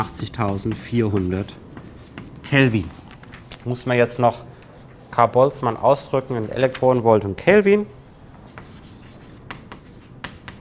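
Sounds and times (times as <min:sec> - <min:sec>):
speech: 0:00.0 - 0:01.7, 0:02.5 - 0:03.0, 0:03.6 - 0:04.5, 0:05.1 - 0:08.0
writing on a board during a physics lecture: 0:00.0 - 0:03.4, 0:08.2 - 0:10.5.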